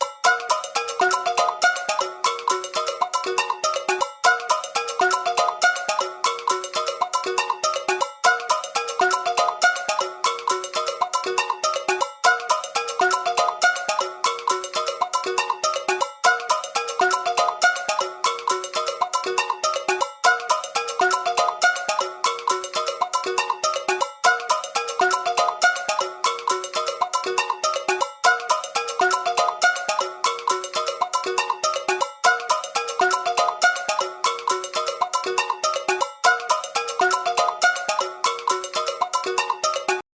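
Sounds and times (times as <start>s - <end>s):
Samsung phone ringtone: 0.0s - 40.0s.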